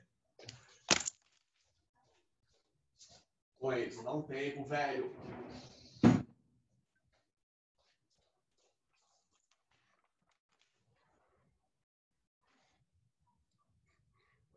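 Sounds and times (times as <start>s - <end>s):
speech: 3.6s - 5.8s
door shutting with a firm thud: 5.2s - 6.3s.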